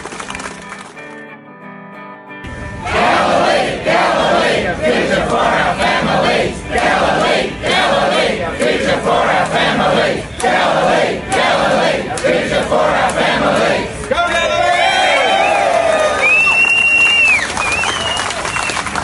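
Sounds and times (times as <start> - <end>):
large protest crowd shouting and chanting: 2.8 - 14.9
shrill whistles: 15.3 - 18.9.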